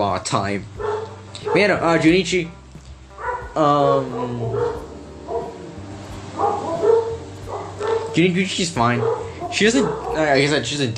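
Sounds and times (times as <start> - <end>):
speech: 0.0 - 2.6, 3.6 - 4.9, 8.2 - 10.9
dog barking, whining, yipping and whimpering: 0.8 - 1.8, 3.2 - 3.6, 4.4 - 5.7, 6.3 - 8.2, 8.9 - 10.4.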